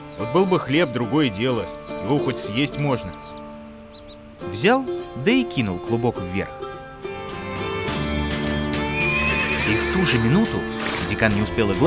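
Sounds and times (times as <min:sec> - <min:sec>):
speech: 0:00.2 - 0:03.4, 0:04.4 - 0:06.7, 0:09.7 - 0:11.8
dapple-grey horse whinnying: 0:07.1 - 0:11.3.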